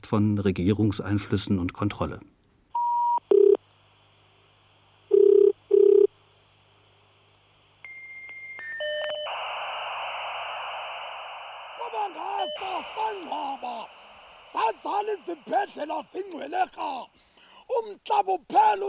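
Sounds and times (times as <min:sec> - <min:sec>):
speech: 0:00.1 - 0:02.4
dial-up modem connecting with dialing tones, handshake squeals and static: 0:02.8 - 0:03.6, 0:05.1 - 0:06.1, 0:07.8 - 0:16.9.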